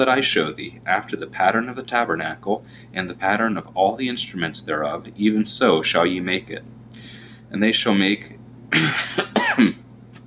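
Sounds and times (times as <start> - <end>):
speech: 0.0 - 9.8
person coughing harshly: 8.7 - 9.8.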